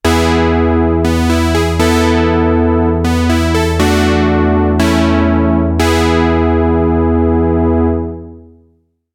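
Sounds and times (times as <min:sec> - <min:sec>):
80s Sequential polyphonic synthesizer: 0:00.0 - 0:08.6.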